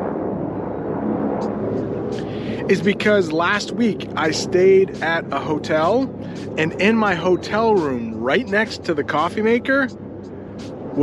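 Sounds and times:
helicopter flying overhead: 0.0 - 11.0
speech: 2.7 - 10.0.

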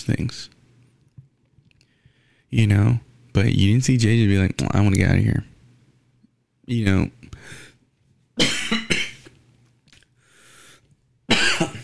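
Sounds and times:
speech: 0.0 - 0.6, 2.5 - 5.5, 6.7 - 7.6
dry harsh coughs from a person with a dry throat: 8.4 - 9.4, 11.3 - 11.8.

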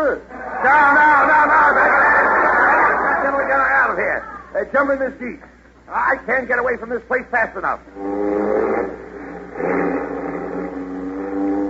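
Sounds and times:
speech: 0.0 - 1.3, 4.6 - 9.0
laughter: 0.3 - 4.0
car engine revving as the vehicle pulls away: 7.9 - 11.6.

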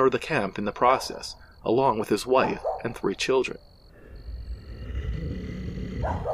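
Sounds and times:
speech: 0.0 - 3.7, 6.0 - 6.3
settlers' dogs barking as they attack bears: 2.4 - 3.0, 6.0 - 6.3
bears growling and roaring: 4.0 - 6.3
animal yelp or snarl: 4.4 - 6.3.

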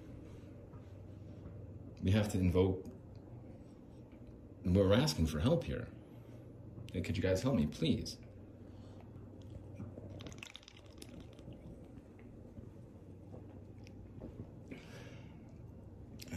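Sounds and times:
speech: 2.0 - 3.0, 4.6 - 6.0, 6.9 - 8.2
soft fizzing of beer: 9.3 - 12.4
beer made with Rocky Mountain water pouring into a glass: 9.8 - 11.9.

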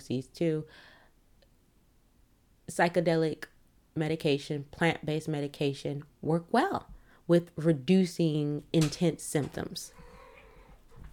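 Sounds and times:
speech: 0.1 - 1.0, 2.7 - 10.0
female cat meowing: 9.9 - 10.8.

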